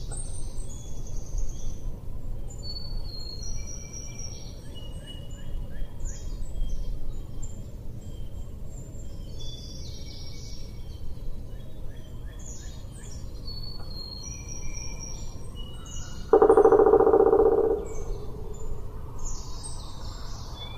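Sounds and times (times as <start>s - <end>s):
constant low background noise: 0.0s - 20.7s
faint chirping birds: 0.0s - 20.7s
woodpecker drum roll in Flat Rock: 16.2s - 18.9s.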